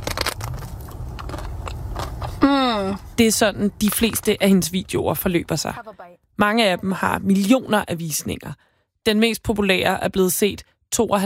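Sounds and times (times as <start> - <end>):
woman in her car biting into and chewing soft cream cakes: 0.0 - 3.1
speech: 2.4 - 11.2.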